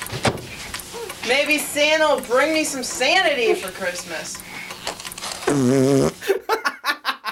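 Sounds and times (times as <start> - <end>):
speech: 1.3 - 4.6, 5.5 - 6.6
loud fart from a child: 5.3 - 6.3
giggling laughter: 6.2 - 7.3.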